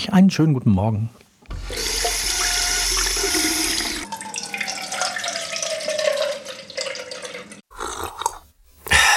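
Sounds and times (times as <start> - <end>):
speech: 0.0 - 1.2
water gushing from a tap into a filling vessel: 1.5 - 7.6.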